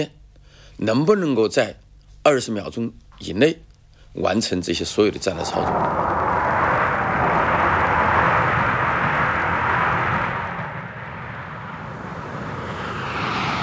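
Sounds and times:
speech: 0.8 - 6.4
military bomber aircraft engines roaring during takeoffs and landings at a military airfield: 4.9 - 13.6.

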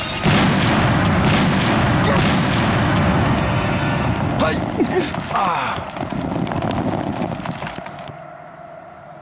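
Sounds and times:
roaring rumble with shattering debris: 0.1 - 7.8
heavy boom: 0.3 - 4.9
bomb explosion: 0.3 - 5.3.

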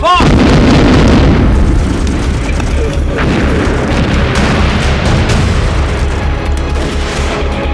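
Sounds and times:
enemy artillery cannon fire: 0.2 - 7.6
explosions: 0.2 - 7.6.

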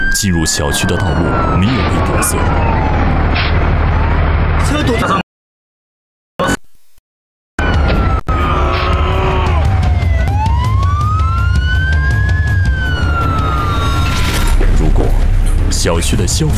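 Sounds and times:
fire engine siren wailing: 0.0 - 4.9, 7.6 - 15.0
speech: 0.1 - 3.0, 4.7 - 5.2, 15.9 - 16.5
rumbling engine: 0.6 - 5.2, 7.6 - 16.5.

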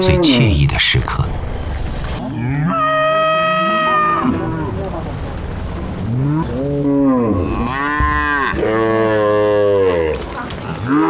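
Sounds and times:
speech: 0.0 - 1.4
grazing herd of Yunling cattle mooing and bellowing: 2.2 - 5.1, 6.0 - 11.0.

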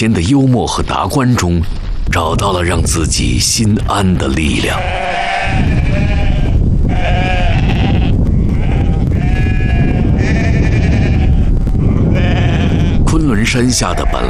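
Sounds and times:
speech: 0.0 - 6.2, 13.5 - 14.2
flock of sheep bleating on mountain pasture below the Kunlun Mountains: 4.5 - 14.2.

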